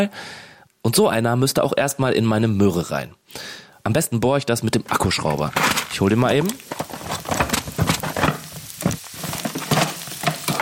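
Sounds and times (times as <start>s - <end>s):
speech: 0.0s - 7.0s
onions sizzling and crackling as they fry in a pan: 5.0s - 10.6s.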